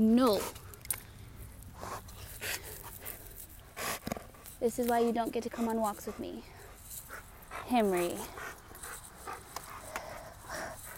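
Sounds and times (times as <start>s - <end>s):
speech: 0.0s - 0.6s, 4.6s - 6.6s, 7.7s - 8.4s
dog panting: 1.8s - 10.9s.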